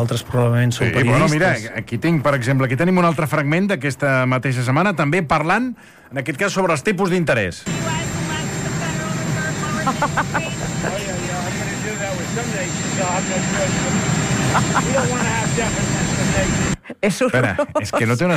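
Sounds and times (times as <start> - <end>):
speech: 0.0 - 7.9, 9.8 - 11.1, 12.4 - 18.3
airplane engines roaring: 7.7 - 16.8
laughter: 9.6 - 11.8, 13.7 - 18.3.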